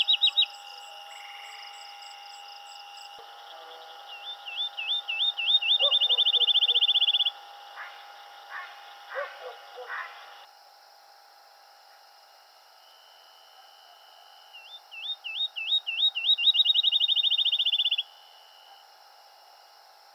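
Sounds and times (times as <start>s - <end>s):
field sparrow singing: 0.0s - 10.4s, 14.6s - 18.0s.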